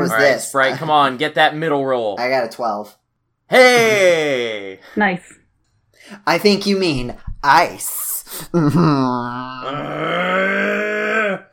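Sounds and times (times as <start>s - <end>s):
speech: 0.0s - 5.4s, 6.0s - 10.9s
person groaning: 3.5s - 4.9s, 8.6s - 11.5s.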